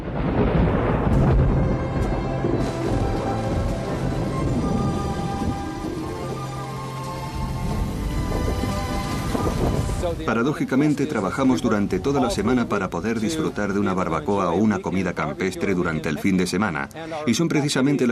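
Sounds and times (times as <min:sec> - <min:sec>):
rolling thunder in a thunderstorm: 0:00.0 - 0:14.3
steady rain in a thunderstorm: 0:00.0 - 0:18.1
speech: 0:10.3 - 0:18.1.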